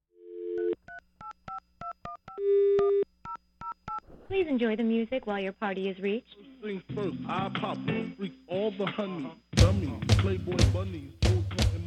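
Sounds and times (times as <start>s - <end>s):
sustained telephone tone: 0.2s - 4.2s
speech: 4.3s - 11.3s.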